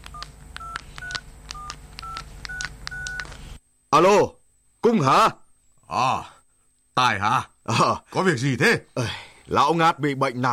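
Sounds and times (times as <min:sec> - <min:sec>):
telephone number dialed on a keypad: 0:00.1 - 0:03.4
speech: 0:03.9 - 0:06.4, 0:07.0 - 0:10.5.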